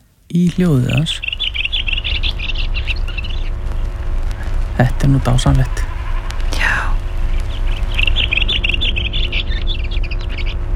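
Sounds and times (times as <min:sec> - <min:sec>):
steady low rumble: 0:00.0 - 0:10.7
soft voice: 0:00.3 - 0:01.2, 0:04.8 - 0:05.9, 0:06.5 - 0:07.0
speech: 0:00.3 - 0:01.3, 0:04.8 - 0:05.8
bird singing high chirping notes: 0:00.4 - 0:04.8, 0:05.6 - 0:10.6.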